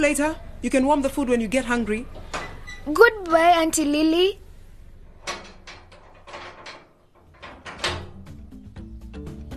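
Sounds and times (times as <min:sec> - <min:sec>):
speech: 0:00.0 - 0:04.4
door locks being locked: 0:05.2 - 0:08.3.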